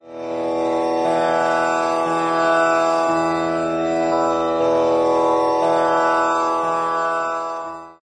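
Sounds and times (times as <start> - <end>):
virtual sitar: 0.0 - 8.0
virtual tanpura drone in E: 0.0 - 8.0.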